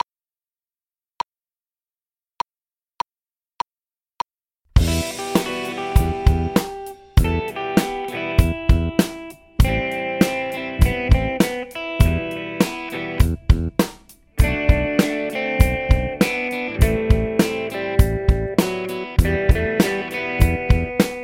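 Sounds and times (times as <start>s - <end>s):
drums: 4.7s - 21.2s
funky guitar: 4.8s - 21.2s.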